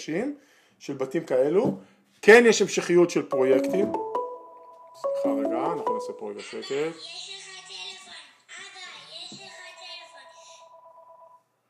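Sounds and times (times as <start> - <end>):
speech: 0.0 - 4.2, 5.0 - 7.5
phone ringing with a warbling electronic ringtone: 3.3 - 6.6, 9.7 - 11.5.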